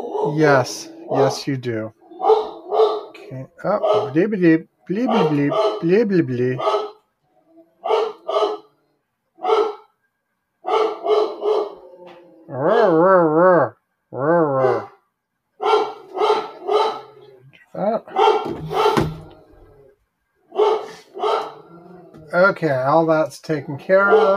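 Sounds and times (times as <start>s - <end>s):
dog barking: 0.0s - 1.4s, 2.1s - 4.2s, 5.0s - 6.0s, 6.6s - 7.1s, 7.8s - 8.7s, 9.4s - 10.0s, 10.6s - 12.0s, 15.6s - 17.4s, 18.0s - 19.4s, 20.5s - 21.7s, 23.9s - 24.3s
speech: 0.0s - 2.0s, 3.3s - 6.8s, 22.6s - 24.3s
dog yowling: 0.0s - 4.2s, 5.0s - 5.8s, 6.6s - 8.8s, 9.4s - 9.9s, 10.6s - 13.4s, 14.4s - 15.0s, 15.6s - 17.5s, 20.5s - 22.4s, 23.8s - 24.3s.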